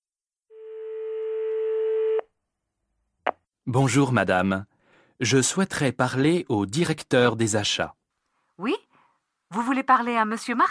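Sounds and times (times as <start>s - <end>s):
steady electronic telephone tone: 0.5s - 2.3s
speech: 3.7s - 8.0s, 8.6s - 8.9s, 9.5s - 10.6s.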